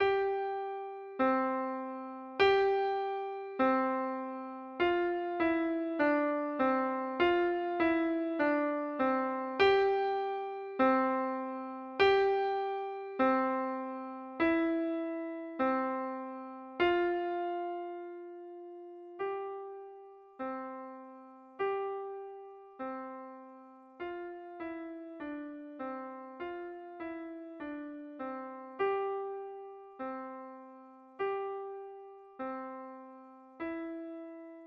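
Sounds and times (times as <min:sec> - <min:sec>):
piano: 0:00.0 - 0:34.6.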